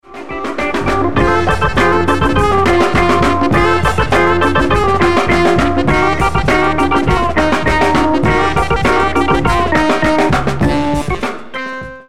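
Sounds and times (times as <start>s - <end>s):
drums: 0.0s - 12.0s
organ: 0.0s - 12.0s.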